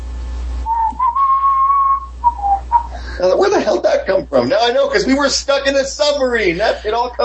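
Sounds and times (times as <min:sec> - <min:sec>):
person whistling a short melodic phrase: 0:00.7 - 0:03.0
laughter: 0:02.8 - 0:07.2
speech: 0:03.2 - 0:07.2.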